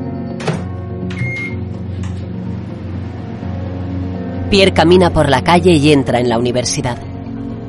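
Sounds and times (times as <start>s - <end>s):
microwave oven running: 0.1s - 3.0s
speech: 4.5s - 7.1s.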